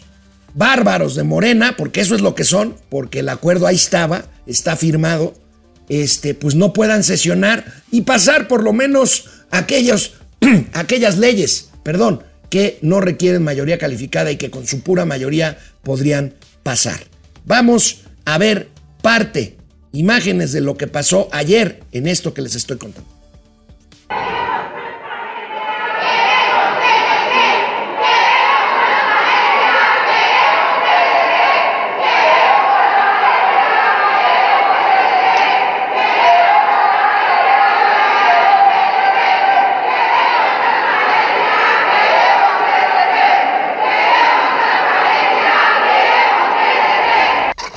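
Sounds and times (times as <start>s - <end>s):
speech: 0.6s - 23.2s
crowd of protesters shouting chanted slogans: 24.1s - 47.6s.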